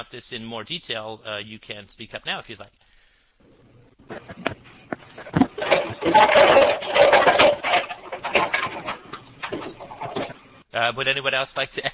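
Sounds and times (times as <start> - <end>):
speech: 0.0 - 2.8, 4.1 - 4.4, 6.0 - 7.5, 10.8 - 11.9
rumbling whirring mechanical appliance noise with irregular clunks over a call line: 4.0 - 10.7.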